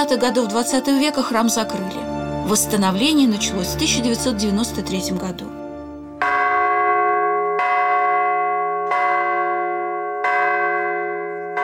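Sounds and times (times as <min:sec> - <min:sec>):
speech: 0:00.0 - 0:05.6
largest church bell tolling on a temporary belfry: 0:06.1 - 0:11.6.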